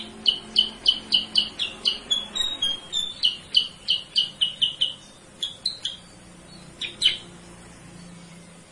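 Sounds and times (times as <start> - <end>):
sooty-headed bulbul chirping, cage bird lure call: 0.0 - 7.3.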